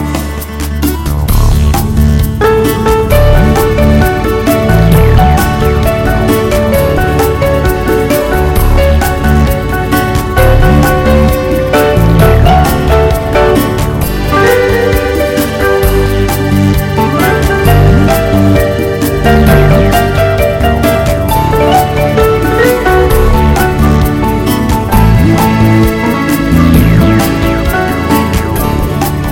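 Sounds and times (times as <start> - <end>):
bossa nova guitar music: 0.0 - 29.2.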